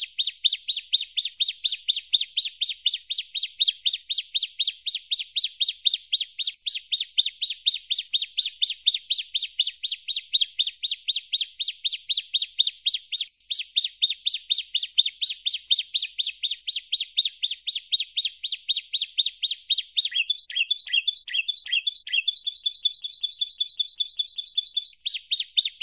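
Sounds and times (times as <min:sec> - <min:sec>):
bar-winged prinia rhythmic high chirped notes: 0:00.0 - 0:25.8.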